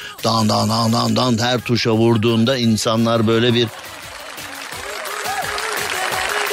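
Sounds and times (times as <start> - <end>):
speech: 0.2 - 3.9
large standing audience applauding: 2.8 - 6.5.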